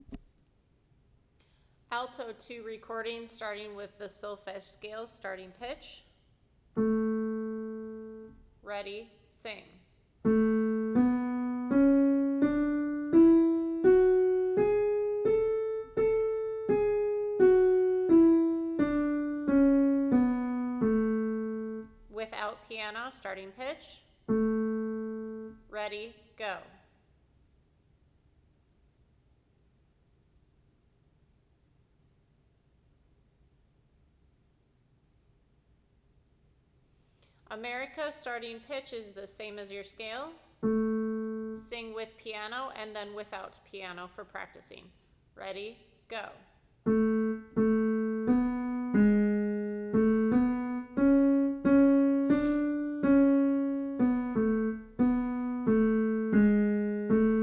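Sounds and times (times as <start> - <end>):
alto voice: 6.8 - 8.4, 10.3 - 22.2, 24.3 - 25.7, 40.6 - 41.8, 46.9 - 57.4.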